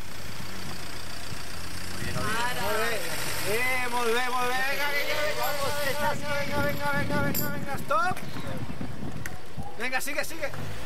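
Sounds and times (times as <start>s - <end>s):
car engine idling: 0.0s - 7.2s
speech: 3.5s - 8.2s, 9.8s - 10.8s.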